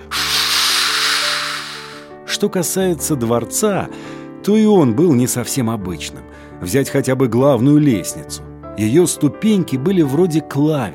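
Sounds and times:
snake-like hiss: 0:00.0 - 0:02.2
speech: 0:02.4 - 0:10.9.

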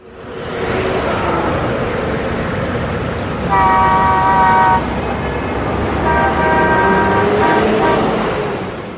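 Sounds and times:
city street traffic rumbling: 0:00.0 - 0:08.9
car horn blasts and overlapping honks: 0:03.5 - 0:04.9, 0:06.0 - 0:08.3.

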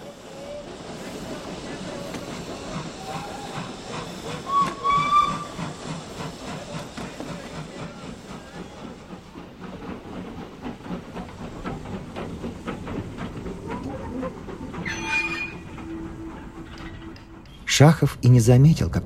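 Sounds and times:
train brakes hissing and squealing at a large station: 0:00.0 - 0:09.4, 0:13.4 - 0:17.8
train wheels clattering over rail joints on curves: 0:00.0 - 0:18.2
speech: 0:17.8 - 0:19.0.

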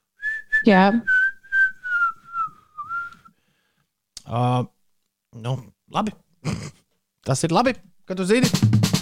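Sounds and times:
person whistling a pop tune: 0:00.1 - 0:03.3
speech: 0:00.6 - 0:01.1, 0:04.3 - 0:08.9.

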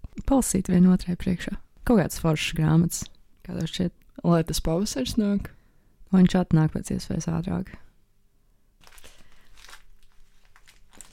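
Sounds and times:
speech: 0:00.3 - 0:07.8
paper rustling from a falling-apart book: 0:08.8 - 0:11.1.

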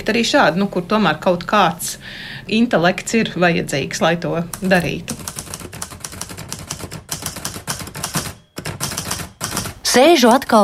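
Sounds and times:
speech: 0:00.0 - 0:05.4, 0:10.0 - 0:10.6
typewriter keys clacking: 0:04.6 - 0:10.0.

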